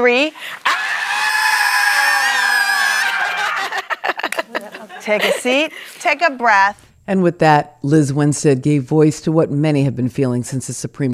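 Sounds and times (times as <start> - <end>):
speech: 0.0 - 0.7, 5.0 - 11.1
large crowd screaming together: 0.5 - 3.9
scattered shouts and yells: 0.6 - 3.8
laughter: 2.0 - 6.0.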